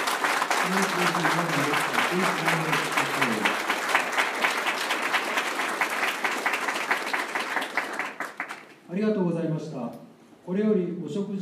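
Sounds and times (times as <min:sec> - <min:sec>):
audience applause at an awards ceremony: 0:00.0 - 0:08.8
speech: 0:00.6 - 0:03.7, 0:08.9 - 0:11.4.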